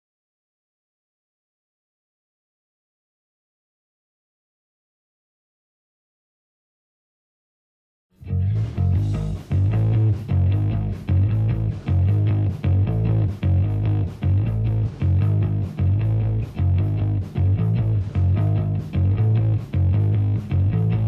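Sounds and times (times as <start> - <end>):
rhythm: 8.2 - 21.0.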